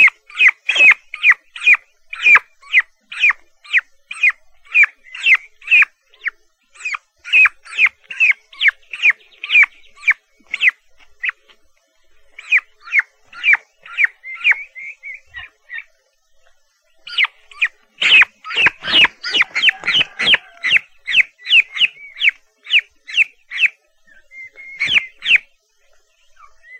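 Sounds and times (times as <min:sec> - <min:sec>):
turkey chicks peeping: 0:00.0 - 0:26.7.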